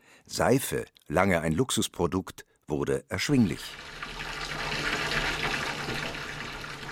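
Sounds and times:
speech: 0:00.3 - 0:04.1
tap water gushing into a bathtub: 0:03.5 - 0:06.9.

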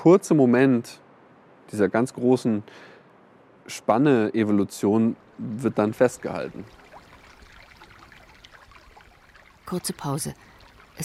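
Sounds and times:
speech: 0:00.0 - 0:01.0, 0:01.7 - 0:02.9, 0:03.7 - 0:06.8, 0:09.7 - 0:11.0
water trickling into bottles at a cave spring: 0:05.1 - 0:11.0.

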